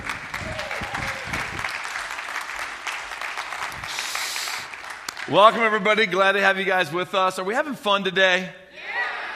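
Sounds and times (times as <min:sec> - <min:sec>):
church audience applauding to welcome a preacher: 0:00.0 - 0:05.8
faint cheer or voice: 0:00.3 - 0:01.7
speech: 0:05.3 - 0:08.6.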